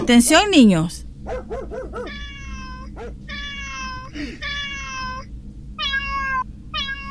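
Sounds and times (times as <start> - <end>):
steady low rumble: 0.0 - 7.0
speech: 0.1 - 1.4
cat meowing: 2.0 - 7.0.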